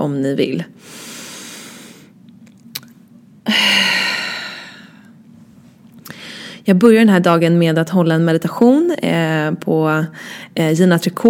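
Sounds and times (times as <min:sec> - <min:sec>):
speech: 0:00.0 - 0:01.1, 0:03.4 - 0:04.0, 0:06.7 - 0:11.2
slow deep breath taken to calm down: 0:00.8 - 0:02.2, 0:03.5 - 0:05.2, 0:06.1 - 0:06.6.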